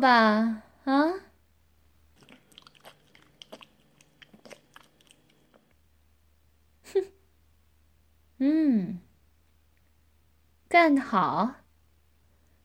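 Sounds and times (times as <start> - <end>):
speech: 0.0 - 1.2, 8.4 - 9.0, 10.7 - 11.6
person biting and chewing crunchy food: 2.1 - 5.8.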